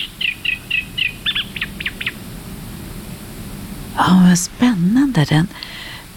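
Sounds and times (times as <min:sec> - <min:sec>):
reed warbler singing from the reeds at Lake Tåkern: 0:00.0 - 0:02.2
speech: 0:04.0 - 0:05.7.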